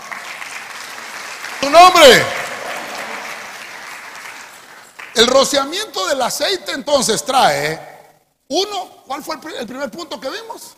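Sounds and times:
crowd clapping loudly: 0.0 - 5.8
speech: 1.6 - 2.4, 5.2 - 7.9, 8.5 - 10.7.

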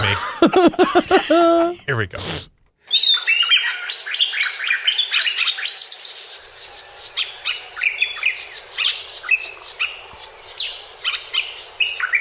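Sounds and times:
laughter: 0.0 - 1.9
speech: 0.1 - 3.2
birds chirping and singing: 2.9 - 12.1
steady hiss: 4.0 - 12.1.

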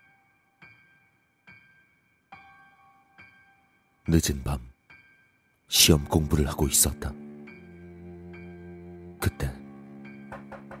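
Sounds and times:
speech: 4.1 - 4.7, 5.7 - 7.3
soft knocks on a window: 10.3 - 10.7.

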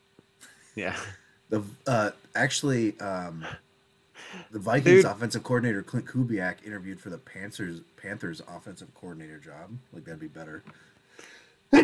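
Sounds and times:
speech: 0.8 - 3.6, 4.2 - 11.8
soft intake of breath: 4.2 - 4.5.

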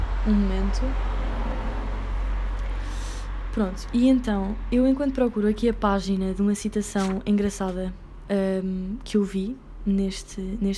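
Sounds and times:
police car passing with engine and road rumble: 0.0 - 4.8
speech: 0.2 - 1.2, 3.6 - 10.7.

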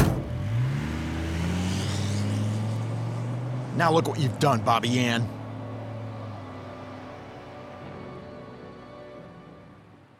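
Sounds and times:
car engine revving and accelerating through gear shifts: 0.0 - 7.6
speech: 3.8 - 5.4.

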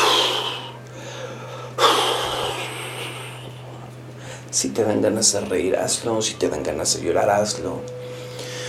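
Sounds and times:
heavy excited breathing of a person shaking their body as an exercise: 0.0 - 4.5, 8.0 - 8.6
steady low hum: 0.0 - 8.6
speech: 4.6 - 8.0.

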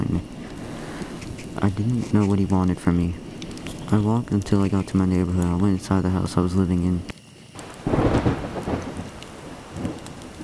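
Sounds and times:
rain pattering: 0.0 - 10.4
speech: 1.6 - 3.2, 3.9 - 7.1
low rumbling thunder: 7.6 - 10.4.

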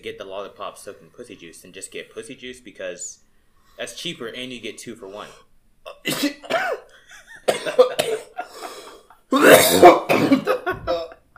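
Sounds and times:
speech: 0.0 - 3.2, 3.8 - 6.9, 7.5 - 10.3
person gagging and retching: 7.5 - 11.3.

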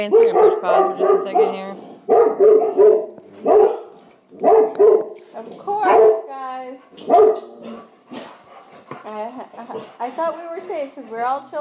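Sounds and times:
speech: 0.0 - 3.0, 4.8 - 8.2, 9.0 - 11.5
dog barking with a high yipping edge: 0.0 - 5.2, 5.8 - 6.3, 7.0 - 8.3.

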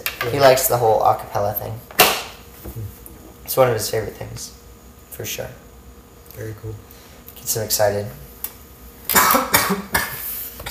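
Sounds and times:
speech: 0.2 - 1.9, 3.5 - 4.6, 5.2 - 5.6, 6.4 - 8.2, 9.3 - 10.0
person coughing: 9.1 - 10.6.

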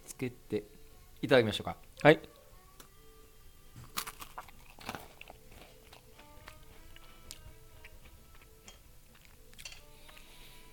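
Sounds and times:
speech: 0.2 - 2.4
crisp crunches of biting into a macaron with fresh cream: 3.8 - 6.2
soft chewing of a macaron with fresh cream: 3.8 - 10.7.

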